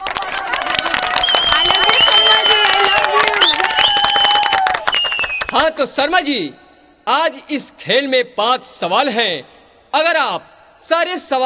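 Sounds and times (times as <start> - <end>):
crowd whooping: 0.0 - 5.6
loud audience applause: 0.0 - 5.6
speech: 5.8 - 11.4.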